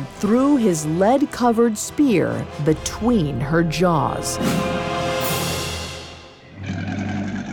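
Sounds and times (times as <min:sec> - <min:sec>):
speech: 0:00.2 - 0:04.9
monster with a lion's mouth roaring: 0:06.5 - 0:07.5.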